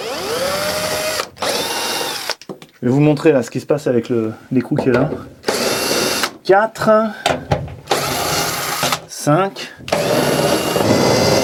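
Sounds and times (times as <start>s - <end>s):
cordless screwdriver drill whining in tightening mode: 0.0s - 2.4s, 5.4s - 6.3s, 7.9s - 9.0s, 9.9s - 11.4s
speech: 2.8s - 5.4s, 6.5s - 7.4s, 9.3s - 10.5s.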